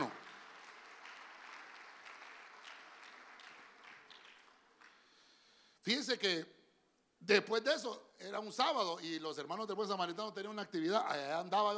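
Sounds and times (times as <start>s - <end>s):
crowd applauding: 0.0s - 5.4s
speech: 5.8s - 6.6s, 7.2s - 11.7s.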